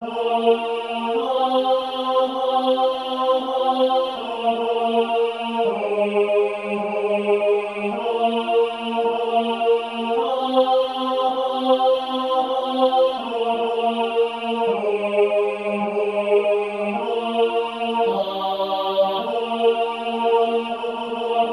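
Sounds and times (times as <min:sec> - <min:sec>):
SATB choir singing: 0:00.0 - 0:21.5.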